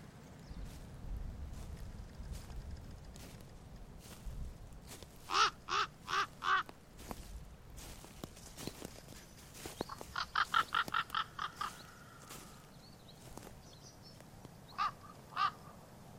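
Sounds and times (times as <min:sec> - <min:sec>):
low wind rumble: 0:00.0 - 0:16.1
raven croaking in a forest: 0:04.9 - 0:08.1, 0:09.6 - 0:12.7, 0:14.7 - 0:15.9.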